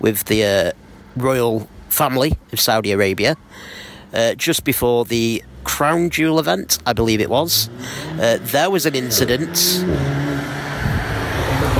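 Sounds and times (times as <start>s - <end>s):
speech: 0.0s - 10.6s
car engine revving as it passes by: 7.4s - 11.7s.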